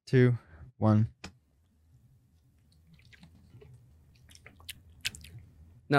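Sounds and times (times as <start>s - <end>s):
speech: 0.1s - 1.2s
person sipping a drink: 2.7s - 5.5s.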